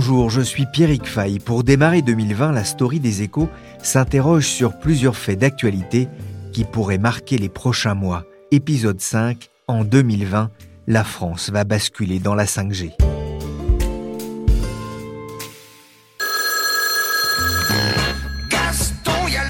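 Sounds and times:
speech: 0.1 - 13.1
telephone ringing with bell-like tones: 16.2 - 19.4.

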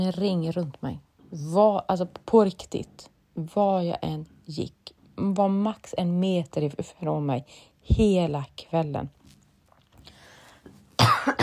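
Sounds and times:
speech: 0.0 - 9.2
person coughing: 11.0 - 11.4.

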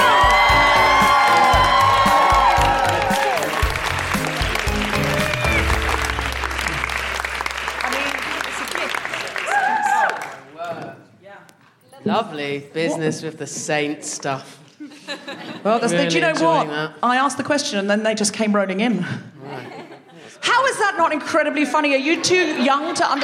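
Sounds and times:
audience clapping at a live evening show: 0.0 - 11.0
speech: 12.2 - 14.6, 15.6 - 19.3, 20.7 - 23.2
laughter: 14.8 - 16.7, 19.4 - 20.4, 22.1 - 23.2.

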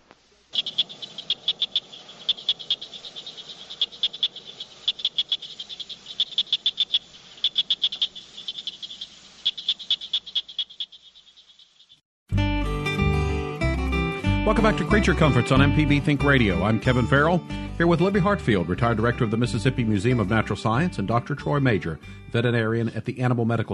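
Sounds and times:
southern cricket frogs giving clicking calls: 0.1 - 12.0
music: 12.3 - 23.7
speech: 14.6 - 23.7.

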